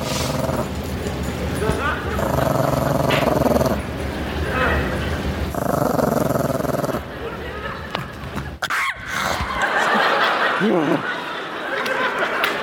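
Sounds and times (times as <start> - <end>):
dog growling: 0.0 - 0.8, 1.9 - 7.1
laughter: 6.9 - 12.6.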